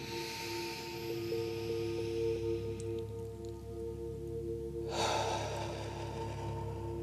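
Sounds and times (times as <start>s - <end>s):
slow deep breath drawn in through the nose: 0.0s - 3.1s, 4.8s - 7.0s
low sustained hum: 0.0s - 7.0s.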